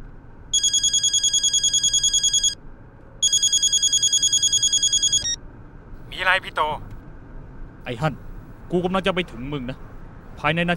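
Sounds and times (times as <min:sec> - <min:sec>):
trilling electronic ringing of an outgoing phone call: 0:00.5 - 0:02.6, 0:03.2 - 0:05.4
speech: 0:06.2 - 0:06.9, 0:07.8 - 0:10.7.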